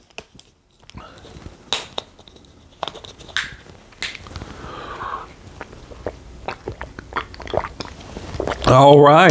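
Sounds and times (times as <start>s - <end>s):
person drinking water with gulping swallows: 4.4s - 8.8s
speech: 8.7s - 9.2s.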